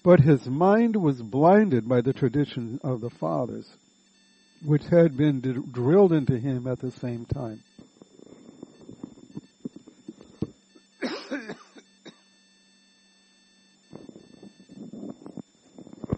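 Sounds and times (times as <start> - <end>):
speech: 0.0 - 3.8, 4.6 - 7.9
low voice speaking: 0.1 - 3.7, 4.6 - 7.6
harsh rough coughs: 11.0 - 12.2.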